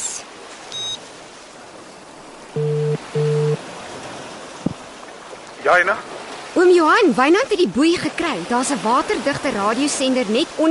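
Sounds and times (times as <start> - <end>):
steady hiss of rushing water or rain: 0.0 - 10.6
brief beep: 0.7 - 1.0, 2.6 - 3.6
phone ringback tone: 0.7 - 1.0, 2.6 - 3.6
speech: 5.6 - 10.6.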